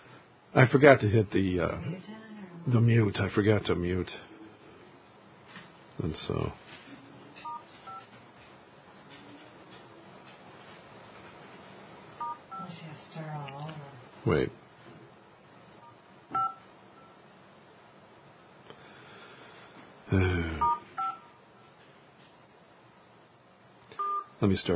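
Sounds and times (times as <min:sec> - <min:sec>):
speech: 0:00.6 - 0:04.3, 0:06.0 - 0:06.6, 0:14.3 - 0:14.6, 0:24.4 - 0:24.7
touch-tone phone keypad beeps: 0:07.4 - 0:08.0, 0:12.2 - 0:12.6, 0:16.3 - 0:16.6, 0:20.6 - 0:21.2, 0:24.0 - 0:24.3.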